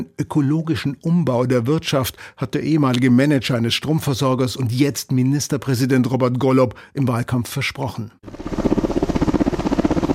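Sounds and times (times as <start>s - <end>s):
speech: 0.0s - 8.6s
helicopter carrying concrete blocks and sandbags to a dam on the Mur river: 8.2s - 10.1s.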